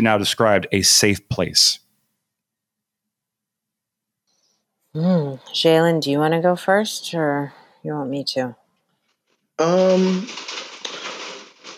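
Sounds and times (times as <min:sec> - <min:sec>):
speech: 0:00.0 - 0:01.8, 0:05.0 - 0:08.6, 0:09.6 - 0:10.6
rain pattering and trickling outside a room in Astoria: 0:09.8 - 0:11.7.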